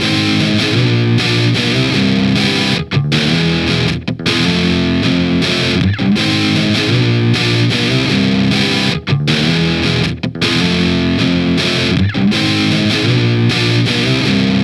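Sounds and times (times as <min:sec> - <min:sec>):
grungy guitar: 0:00.0 - 0:14.6.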